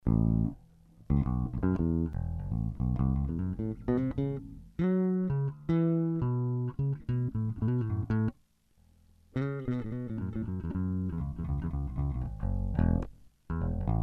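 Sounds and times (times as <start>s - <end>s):
Ibanez jazz bass guitar riff: 0.0s - 8.3s, 9.4s - 14.0s.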